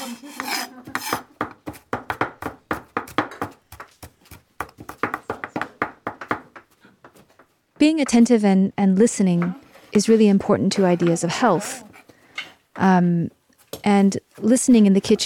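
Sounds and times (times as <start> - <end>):
knife chopping food on a board in a kitchen: 0.4 - 6.6
speech: 7.8 - 11.8, 12.8 - 15.2.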